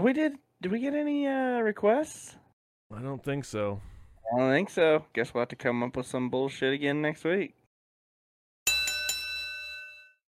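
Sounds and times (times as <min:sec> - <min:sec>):
speech: 0:00.0 - 0:07.6
doorbell ringing with a bright chime: 0:08.7 - 0:10.2.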